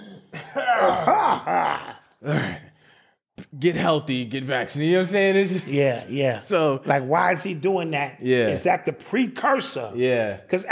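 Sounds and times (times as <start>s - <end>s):
voice imitating exaggerated dramatic coughing: 0.0s - 2.7s
speech: 3.6s - 10.7s.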